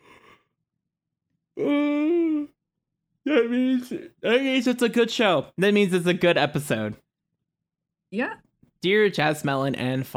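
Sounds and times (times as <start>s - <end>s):
speech: 1.6s - 1.8s, 3.3s - 7.0s, 8.1s - 10.1s
yawn: 1.6s - 2.6s.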